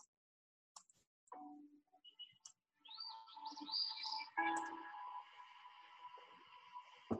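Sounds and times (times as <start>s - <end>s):
birdsong whistling calls and trills playing from a video: 1.9s - 5.9s.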